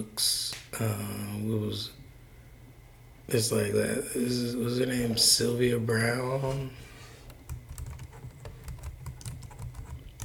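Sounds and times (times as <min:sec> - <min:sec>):
speech: 0:00.0 - 0:02.0, 0:03.3 - 0:06.9
typing on a computer keyboard: 0:07.4 - 0:10.2.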